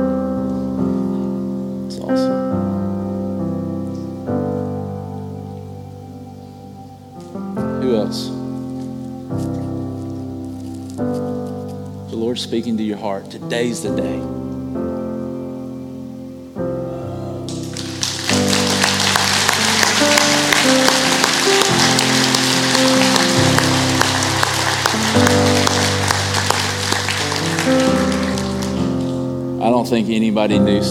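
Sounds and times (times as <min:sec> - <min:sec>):
steady music: 0:00.0 - 0:30.8
speech: 0:12.4 - 0:14.4, 0:29.9 - 0:30.8
crowd applause: 0:17.4 - 0:29.4.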